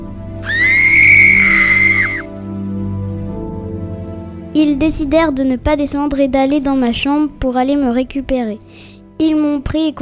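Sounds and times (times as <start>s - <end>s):
piercing high-pitched scream: 0.4s - 2.3s
speech: 4.6s - 10.0s.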